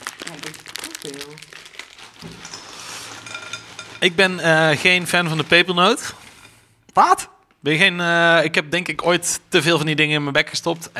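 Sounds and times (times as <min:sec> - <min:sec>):
plastic snack bag being opened and crinkled: 0:00.0 - 0:04.0
speech: 0:01.0 - 0:01.6, 0:04.0 - 0:06.2, 0:07.0 - 0:10.9.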